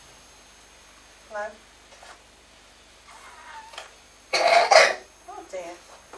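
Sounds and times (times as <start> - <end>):
speech: 1.3 - 1.7
child coughing: 4.3 - 5.1.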